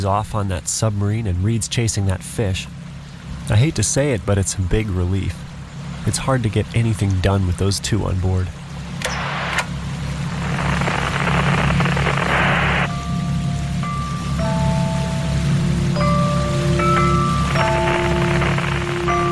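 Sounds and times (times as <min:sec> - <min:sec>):
speech: 0:00.0 - 0:02.9, 0:03.5 - 0:08.6
low droning hum: 0:00.0 - 0:19.3
dense continuous radio static: 0:09.0 - 0:09.7, 0:10.3 - 0:12.9, 0:17.5 - 0:19.3
thin steady interference whistles and tones: 0:09.0 - 0:09.7, 0:10.3 - 0:13.0, 0:17.5 - 0:19.3.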